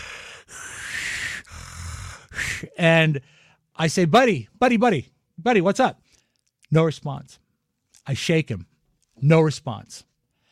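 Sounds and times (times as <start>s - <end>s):
person imitating heavy strained breathing of an unresponsive person: 0.0s - 2.8s
speech: 2.8s - 6.0s, 6.7s - 7.4s, 8.0s - 10.1s.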